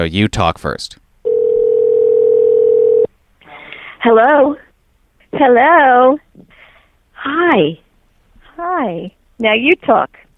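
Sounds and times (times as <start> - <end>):
speech: 0.0 - 1.0, 4.0 - 4.6, 5.3 - 6.5, 7.2 - 7.8, 8.6 - 10.2
electronic telephone ringback tone: 1.3 - 3.1.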